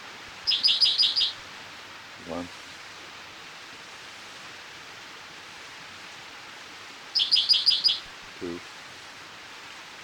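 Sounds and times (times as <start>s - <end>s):
spotted towhee call: 0.5s - 1.4s, 7.2s - 8.1s.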